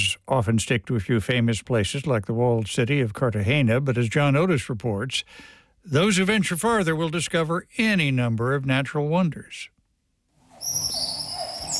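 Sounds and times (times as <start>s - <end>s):
speech: 0.2s - 9.7s
busy wash of bird chirps in the Amazon rainforest: 10.5s - 11.7s
sustained high whistling tones of birds in the Amazon rainforest of eastern Colombia: 10.5s - 11.7s.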